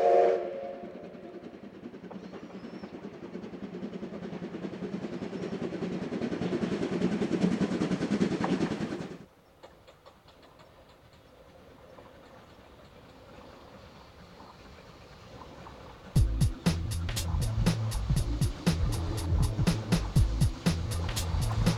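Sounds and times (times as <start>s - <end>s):
steam train rumble on a mainline railway: 0.0s - 21.7s
steam train carriages clattering: 16.6s - 21.7s.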